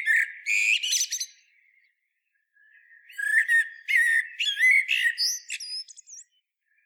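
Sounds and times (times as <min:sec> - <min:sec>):
common blackbird Turdus merula singing: 0:00.0 - 0:01.9, 0:02.6 - 0:06.4.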